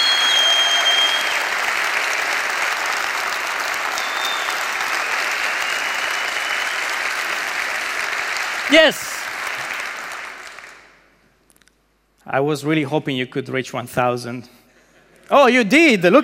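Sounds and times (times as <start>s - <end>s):
audience clapping and cheering: 0.0s - 11.1s
speech: 8.7s - 9.1s, 12.3s - 14.6s, 15.3s - 16.2s.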